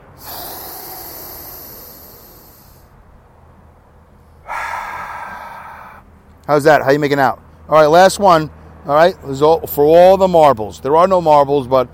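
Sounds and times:
deliberate deep breath taken as a calming exercise: 0.0s - 3.0s, 4.4s - 6.1s
speech: 6.5s - 11.9s.

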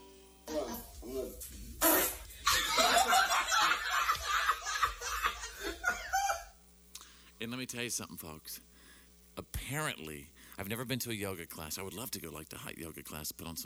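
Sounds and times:
people laughing and snickering: 0.5s - 6.5s
loud fart by a woman during a deep stretch: 1.8s - 3.4s
speech: 7.6s - 8.8s, 9.4s - 13.6s.

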